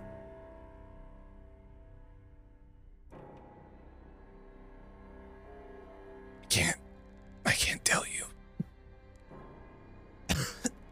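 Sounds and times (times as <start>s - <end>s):
speech: 6.5s - 6.9s
harsh raspy cough: 10.3s - 10.7s.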